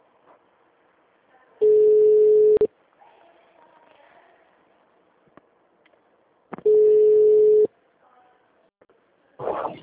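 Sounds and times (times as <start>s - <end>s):
faint noise: 0.0s - 9.8s
telephone ringback tone while a call is placed: 1.6s - 2.7s, 6.7s - 7.7s.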